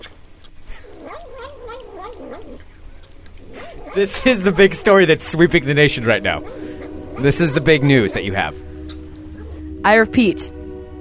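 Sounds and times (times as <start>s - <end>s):
low steady hum: 0.0s - 11.0s
cat making num-num sounds while eating sour cream: 1.0s - 8.5s
speech: 4.0s - 6.6s, 7.2s - 8.7s, 9.8s - 10.6s.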